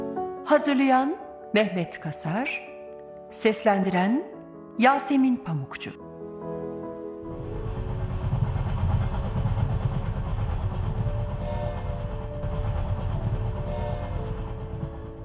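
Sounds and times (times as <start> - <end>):
speech: 0.5 - 2.7, 3.3 - 6.0
train rumbling over rails: 7.2 - 15.2.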